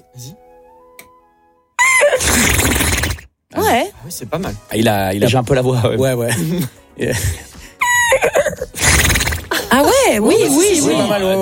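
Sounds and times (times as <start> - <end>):
speech: 0.1 - 0.5, 3.7 - 7.5, 10.1 - 11.4
person imitating a horse whinny: 1.8 - 3.3, 8.8 - 9.6.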